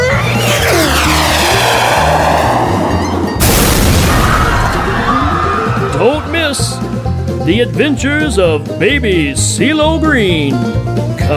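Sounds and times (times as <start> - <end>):
rocket launcher firing in a film trailer: 0.1 - 7.1
heavy boom with roaring rumble: 0.1 - 7.5
speech: 7.5 - 11.3.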